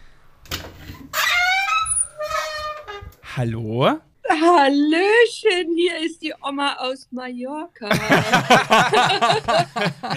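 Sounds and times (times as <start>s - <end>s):
door swinging open with hinge squeak: 1.0s - 3.2s
speech: 3.4s - 10.1s
laughter: 7.9s - 10.1s.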